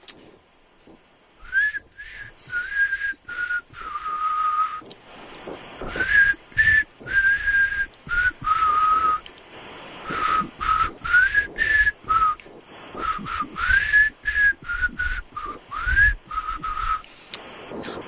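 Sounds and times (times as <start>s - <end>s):
breathy rustle: 0.0s - 14.1s, 16.6s - 18.0s
person whistling a song melody: 1.4s - 4.9s, 5.9s - 9.3s, 10.0s - 17.1s.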